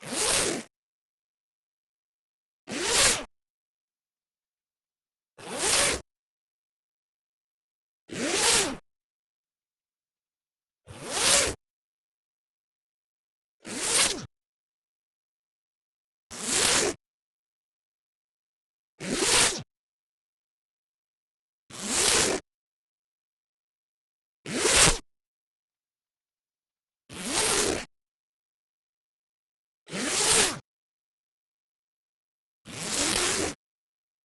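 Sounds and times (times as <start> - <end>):
metal zipper on wool coat zipping fast: 0.0 - 0.7, 2.7 - 3.3, 5.4 - 6.1, 8.1 - 8.8, 10.9 - 11.6, 13.6 - 14.3, 16.3 - 17.0, 19.0 - 19.7, 21.8 - 22.5, 24.5 - 25.1, 27.1 - 27.9, 29.9 - 30.6, 32.7 - 33.6.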